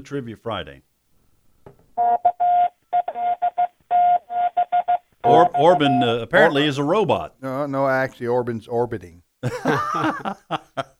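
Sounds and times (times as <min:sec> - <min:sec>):
speech: 0:00.0 - 0:00.9, 0:05.2 - 0:10.9
Morse code beeps of radio call letters over a phone line: 0:02.0 - 0:06.6
laughter: 0:09.4 - 0:10.9.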